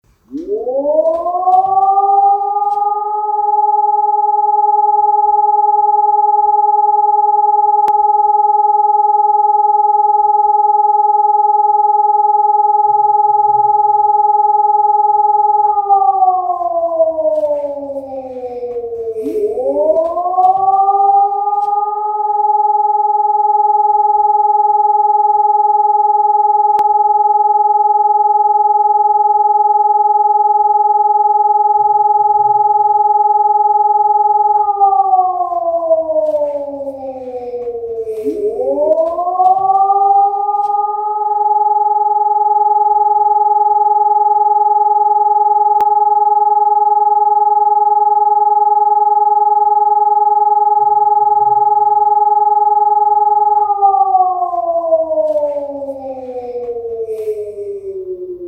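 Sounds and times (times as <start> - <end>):
siren signal for alerting: 0.1 - 58.4.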